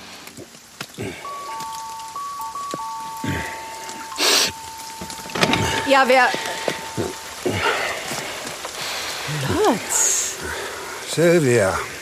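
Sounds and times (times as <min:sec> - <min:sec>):
steady rain pattering: 0:00.0 - 0:11.9
thin sustained tone: 0:01.2 - 0:07.9
speech: 0:05.9 - 0:06.5, 0:09.6 - 0:10.0, 0:11.2 - 0:11.9.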